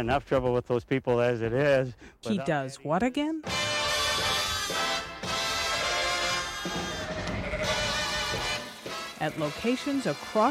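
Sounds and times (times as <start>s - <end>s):
speech: 0.0s - 4.4s, 9.2s - 10.4s
flock of sheep bleating on a sheep farm outside Superior: 5.8s - 10.0s.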